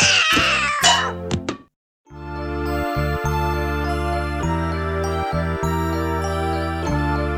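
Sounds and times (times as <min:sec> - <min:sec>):
cat meowing: 0:00.0 - 0:01.2
instrumental music: 0:02.1 - 0:07.3.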